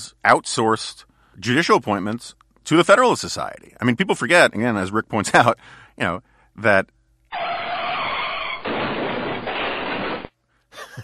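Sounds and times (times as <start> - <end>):
speech: 0.2 - 7.4
strange crashing sound effect with screeching skidding edge: 7.3 - 10.3
laughter: 10.8 - 11.0.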